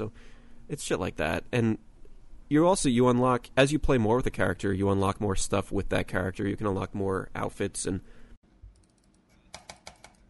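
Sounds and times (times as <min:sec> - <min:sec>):
speech: 0:00.0 - 0:01.9, 0:02.5 - 0:08.2
computer keyboard typing: 0:08.7 - 0:10.2.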